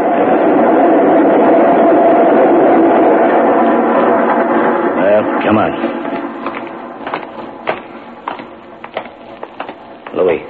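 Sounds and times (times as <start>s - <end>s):
express train rushing through a station without stopping: 0.0s - 10.0s
speech: 5.5s - 6.0s.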